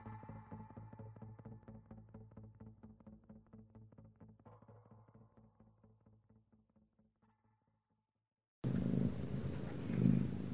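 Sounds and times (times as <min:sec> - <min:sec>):
cat purring: 0:08.7 - 0:10.5.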